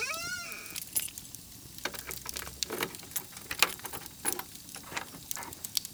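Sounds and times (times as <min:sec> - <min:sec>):
keychain jingling by a fireplace: 0:00.2 - 0:05.7.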